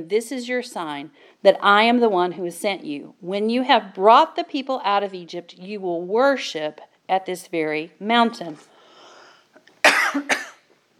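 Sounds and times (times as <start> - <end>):
speech: 0.0 - 8.7
person coughing in harsh bursts: 9.8 - 10.7.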